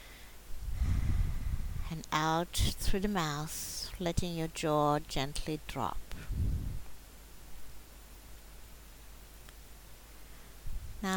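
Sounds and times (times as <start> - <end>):
deep inhale through the nose: 0.0 - 1.8
speech: 1.9 - 6.5.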